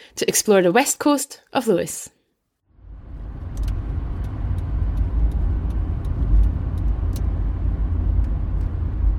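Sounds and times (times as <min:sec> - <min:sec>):
speech: 0:00.1 - 0:02.2
hired car engine rumble and tyre roar on a quiet road on the Isle of Lewis: 0:02.8 - 0:09.1.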